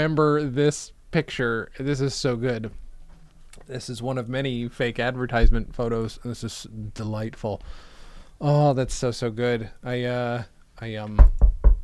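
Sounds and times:
speech: 0.0 - 2.8, 3.7 - 11.5
heavy knocks on a door: 11.2 - 11.8.

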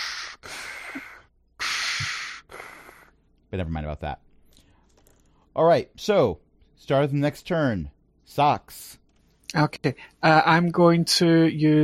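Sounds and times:
voice imitating heavy respirator breathing through a black helmet: 0.0 - 3.2
speech: 3.5 - 4.3, 5.6 - 11.8.

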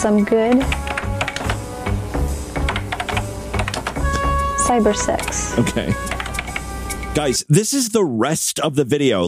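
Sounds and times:
speech: 0.0 - 0.8, 4.7 - 6.2, 7.2 - 9.2
steady low hum: 0.0 - 8.4
typing on a computer keyboard: 0.5 - 1.6, 2.6 - 4.0, 6.1 - 6.6
laughter: 5.5 - 6.2.

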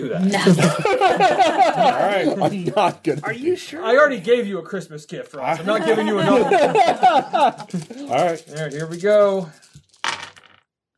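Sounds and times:
speech: 0.0 - 9.7
laughter: 0.2 - 3.3, 5.4 - 8.4
dice tumbling onto a table during a game: 7.7 - 10.7.

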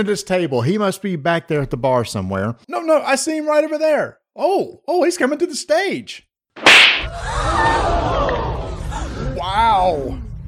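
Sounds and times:
speech: 0.0 - 8.4, 9.5 - 10.2
sharp loud slap to a person's face: 6.6 - 7.1.

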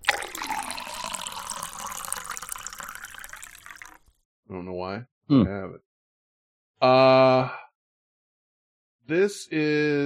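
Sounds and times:
liquid pouring into a container: 0.0 - 4.2
speech: 4.5 - 5.9, 6.8 - 7.6, 9.1 - 10.0.

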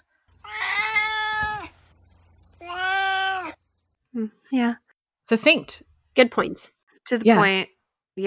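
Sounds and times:
cat meowing: 0.4 - 1.8, 2.6 - 3.6
speech: 4.2 - 8.2.

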